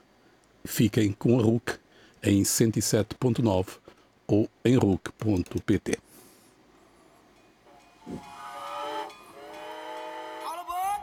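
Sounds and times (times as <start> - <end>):
speech: 0.8 - 6.1, 8.1 - 8.3
steam train hissing as it pulls in: 8.0 - 11.0.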